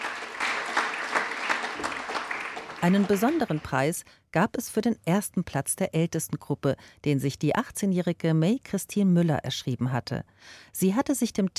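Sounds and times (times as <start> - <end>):
audience clapping at an award ceremony for a writing competition: 0.0 - 4.0
speech: 2.8 - 11.5.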